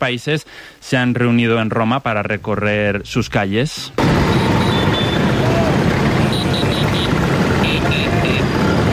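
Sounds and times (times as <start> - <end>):
speech: 0.0 - 4.4
Vespa scooter engines buzzing in Rome street traffic: 4.0 - 8.9.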